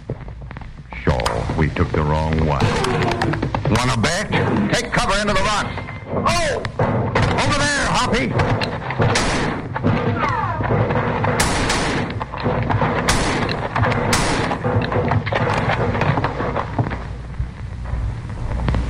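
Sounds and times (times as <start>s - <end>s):
rumbling noisy background: 0.0s - 18.8s
speech: 1.4s - 10.9s
gunfire volley in a canyon shootout among rocks: 6.7s - 16.8s.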